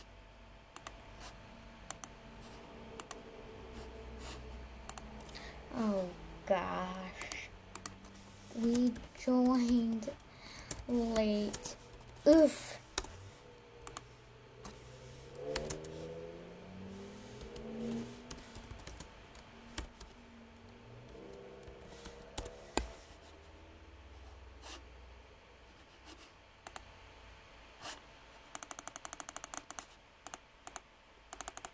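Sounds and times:
rapid computer mouse clicking during an online game: 0.7s - 5.4s, 7.0s - 13.2s, 13.8s - 16.2s, 16.9s - 23.2s, 26.0s - 26.9s, 27.8s - 31.7s.

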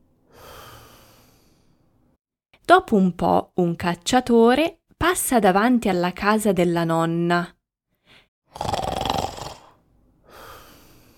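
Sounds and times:
speech: 2.7s - 7.6s, 8.5s - 8.8s
person snoring: 8.5s - 11.1s.

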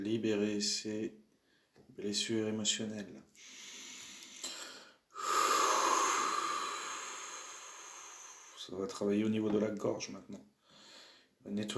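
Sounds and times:
speech: 0.0s - 1.2s, 1.8s - 3.7s, 8.7s - 10.5s, 11.4s - 11.7s
big forceful exhale during guided breathing: 3.4s - 8.6s.

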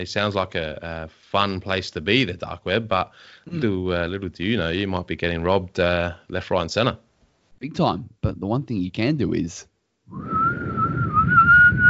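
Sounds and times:
speech: 0.0s - 10.7s
low rumbling noise: 10.1s - 11.8s
person whistling one long mid-high note: 10.1s - 11.8s.

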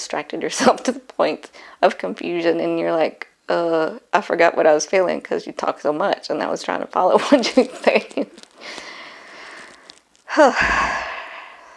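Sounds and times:
speech: 0.1s - 8.9s, 10.3s - 11.0s
heavy breathy exhalations: 8.6s - 11.7s.

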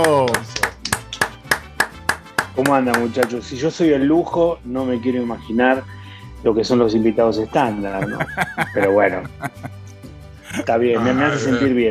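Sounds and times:
applause welcoming a guest: 0.0s - 3.5s, 7.8s - 11.7s
speech: 2.6s - 9.7s, 10.6s - 11.8s
laughter: 7.7s - 11.7s.

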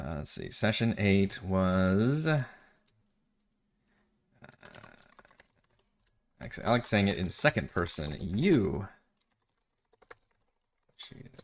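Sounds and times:
speech: 0.2s - 2.6s, 6.4s - 9.0s, 11.0s - 11.4s
typing on a clacky computer keyboard: 4.5s - 8.4s, 9.2s - 11.4s.

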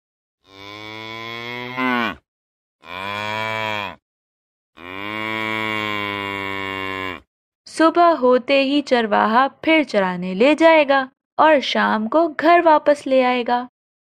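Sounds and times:
cow mooing in long drawn-out calls: 0.4s - 2.2s, 2.8s - 4.0s, 4.8s - 7.3s
speech: 7.8s - 13.7s.

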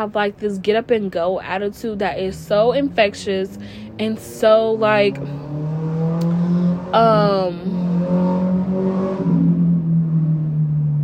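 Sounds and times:
speech: 0.0s - 5.4s, 6.9s - 7.8s
loud car engine passing outside an apartment building: 2.3s - 11.0s.

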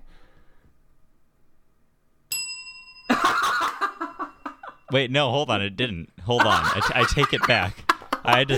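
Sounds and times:
bell ding: 2.3s - 5.0s
laughter: 3.1s - 4.8s, 6.3s - 8.5s
speech: 4.9s - 8.5s.

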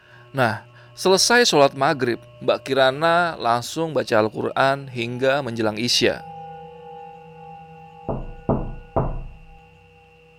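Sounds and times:
speech: 0.3s - 6.3s
firm knocks on a wooden front door: 8.1s - 9.6s.

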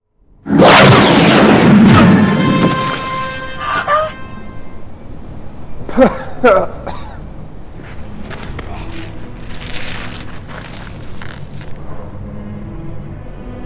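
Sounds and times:
loud roaring blast of blue energy rays: 0.4s - 3.1s.

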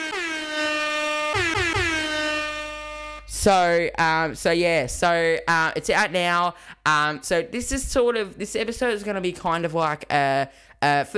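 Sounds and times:
air horn sound effect blasts: 0.0s - 3.5s
speech: 3.4s - 11.1s.

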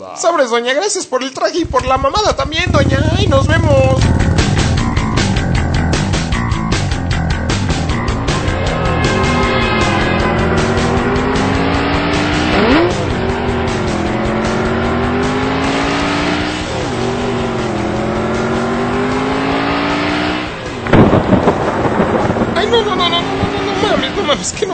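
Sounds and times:
speech: 0.1s - 4.3s
motorcycle engine roaring at full throttle through gear changes: 1.5s - 24.7s
thunder crack and rolling rumble before rain: 1.6s - 6.6s, 20.8s - 24.7s.

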